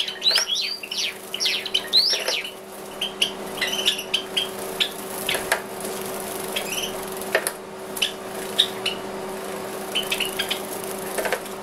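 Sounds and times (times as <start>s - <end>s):
Java sparrow Padda oryzivora chips and metallic tweets: 0.0s - 5.5s, 6.5s - 7.0s, 9.9s - 10.8s
faint steady hum: 0.0s - 11.6s.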